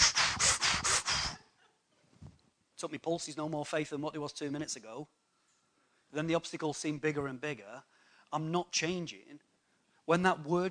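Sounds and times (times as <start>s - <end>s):
exaggerated breathing in and out: 0.0s - 1.4s
speech: 2.8s - 5.3s, 6.1s - 9.5s, 10.1s - 10.6s.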